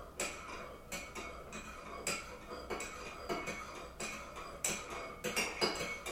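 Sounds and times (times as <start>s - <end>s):
spoon stirring coffee in a cup: 0.0s - 6.1s.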